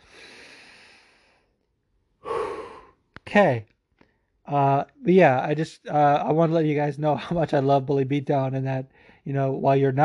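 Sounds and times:
person taking a deep breath: 0.0 - 1.5, 2.2 - 3.0
speech: 3.3 - 3.7, 4.5 - 10.0.

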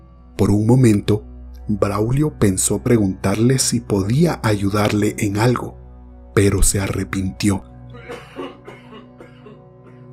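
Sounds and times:
speech: 0.4 - 5.8, 6.4 - 8.2
elderly man coughing: 7.9 - 10.1.

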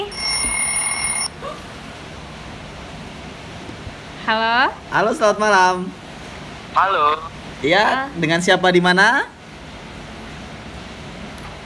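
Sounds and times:
telephone ringing with an incoming call: 0.0 - 1.3
speech: 4.3 - 6.0, 6.8 - 9.4.

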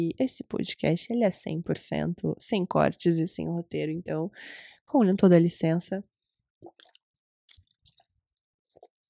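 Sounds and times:
speech: 0.0 - 6.9
swallowing: 6.6 - 8.1
person sipping water: 6.6 - 9.0.

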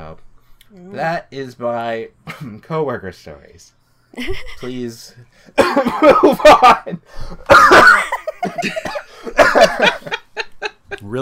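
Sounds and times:
speech: 0.2 - 10.2, 11.0 - 11.2
harsh fit of coughing: 5.6 - 6.8, 7.4 - 10.0.

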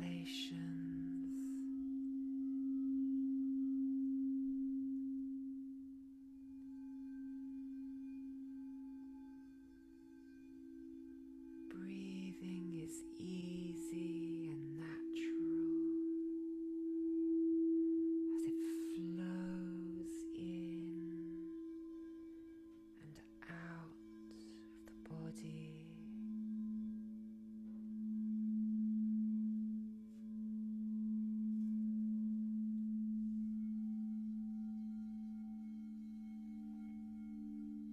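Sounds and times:
soft spoken voice: 0.0 - 1.7, 11.7 - 16.0, 18.3 - 21.5, 23.0 - 26.1
chakra tuned crystal bowl ringing in a steady low drone: 0.0 - 37.9.

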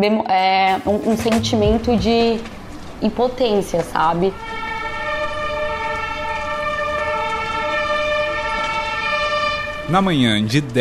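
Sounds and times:
speech: 0.0 - 4.6, 9.9 - 10.8
fire engine siren responding to a fire at a cultural centre: 3.8 - 10.2.

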